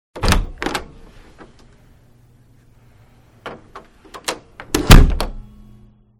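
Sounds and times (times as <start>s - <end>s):
wooden door opening and closing: 0.2s - 1.5s, 3.4s - 5.4s.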